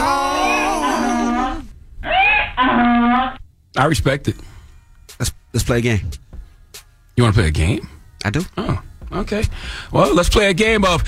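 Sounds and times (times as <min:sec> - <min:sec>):
donkey braying sound effect: 0:00.0 - 0:03.4
speech: 0:03.8 - 0:04.5, 0:05.1 - 0:06.2, 0:07.2 - 0:11.0.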